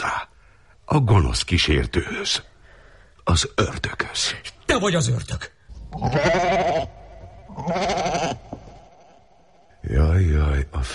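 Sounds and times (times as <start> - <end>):
speech: 0.9 - 2.5, 3.3 - 8.4, 9.9 - 10.9
goat bleating: 5.9 - 8.8.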